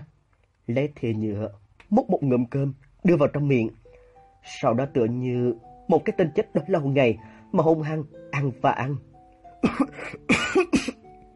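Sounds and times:
speech: 0.7 - 3.8, 4.4 - 10.3
violent dry coughing after choking on food: 9.6 - 11.0.

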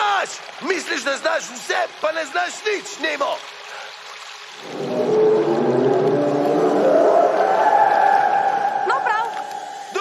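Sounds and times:
speech: 0.6 - 3.6, 4.6 - 5.1
whale call: 4.6 - 9.8.

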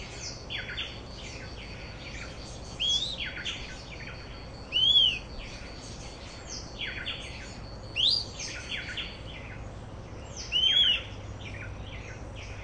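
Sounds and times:
fuscous flycatcher Cnemotriccus fuscatus fuscatior singing whistled notes: 0.0 - 9.3, 10.4 - 11.2
soft bird chirps: 0.0 - 12.6.

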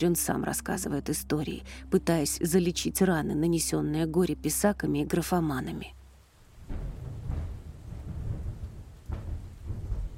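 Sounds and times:
speech: 0.0 - 6.0
steady rain: 5.1 - 10.1
thunder rumbling: 6.4 - 10.1.

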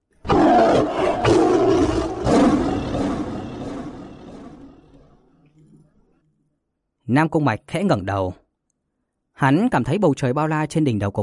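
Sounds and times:
giant black-and-white tiger roaring: 0.2 - 5.4
speech: 7.1 - 8.4, 9.4 - 11.2.

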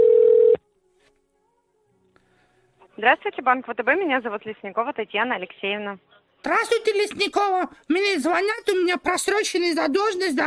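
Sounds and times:
mid-pitched phone tone while dialing a telephone number: 0.0 - 0.6
speech: 3.0 - 10.4.

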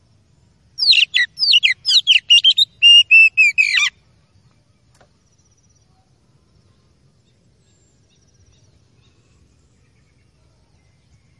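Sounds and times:
Oriental magpie-robin song of varied whistled and slurred notes: 0.8 - 4.0.

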